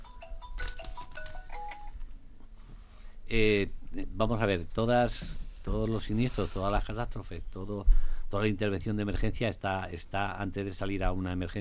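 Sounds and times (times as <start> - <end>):
mobile phone ringing with a quick electronic beeping melody: 0.0 - 2.0
speech: 3.3 - 11.5.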